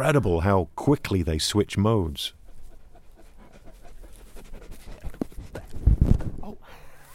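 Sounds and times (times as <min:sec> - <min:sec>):
speech: 0:00.0 - 0:02.4
long-coated white sheep-guarding dog panting against the microphone: 0:02.1 - 0:06.4
low rumbles of microphone handling noise: 0:05.1 - 0:06.5.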